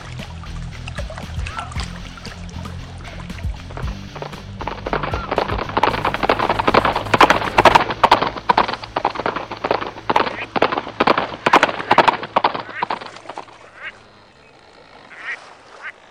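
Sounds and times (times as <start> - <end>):
heavy hoofbeats of a galloping horse: 0.0 - 13.7.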